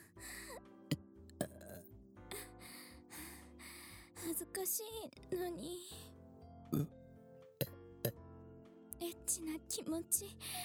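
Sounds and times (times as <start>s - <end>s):
long deep croaky burp: 1.4s - 1.8s, 6.7s - 6.9s
speech: 4.3s - 6.0s, 6.7s - 7.0s, 9.3s - 10.6s.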